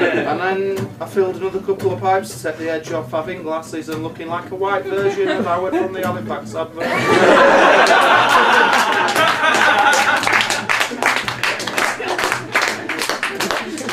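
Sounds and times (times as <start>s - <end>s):
people chuckling: 0.0s - 0.4s, 5.0s - 6.1s, 6.8s - 13.9s
speech: 0.2s - 10.4s
laughter: 5.0s - 5.9s, 6.8s - 13.9s
crowd applauding: 6.8s - 13.9s.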